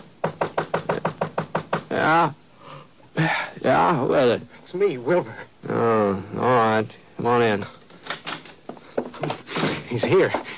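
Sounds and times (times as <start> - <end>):
pounding on a door: 0.2 - 2.0
speech: 1.9 - 2.4, 3.2 - 7.8, 9.9 - 10.5.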